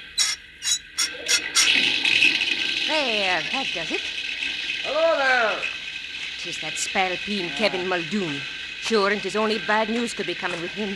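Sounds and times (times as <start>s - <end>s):
squeaky turns of a spigot: 0.0s - 1.8s
water pouring through a water pipe into an engine boiler: 0.0s - 10.9s
speech: 2.9s - 4.2s, 4.9s - 5.7s, 6.4s - 10.9s.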